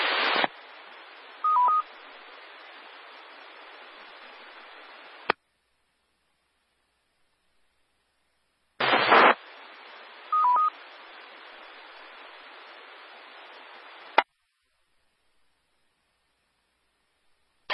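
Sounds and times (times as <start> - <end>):
loud radio crackle: 0.0 - 1.0, 8.8 - 10.0
storm-spotter radio net hiss: 0.0 - 5.4, 8.8 - 14.4
radio double beep: 10.4 - 10.7.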